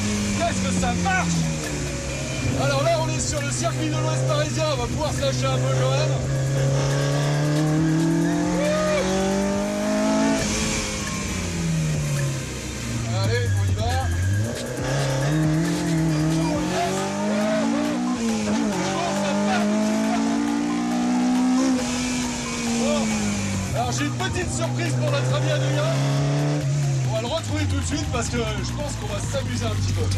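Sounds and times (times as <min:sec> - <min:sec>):
Mini racing car engine sweeping through gear changes: 0:00.0 - 0:30.1
Mini tires squealing while cornering: 0:00.0 - 0:30.1
speech: 0:00.5 - 0:07.0, 0:27.9 - 0:30.1.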